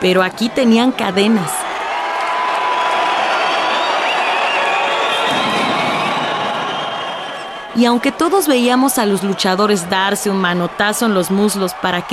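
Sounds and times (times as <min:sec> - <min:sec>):
speech: 0:00.0 - 0:01.6, 0:07.8 - 0:12.1
large indoor crowd of wrestling fans cheering and yelling: 0:00.0 - 0:12.1
high-pitched shrieks of wrestling fans: 0:04.0 - 0:07.8.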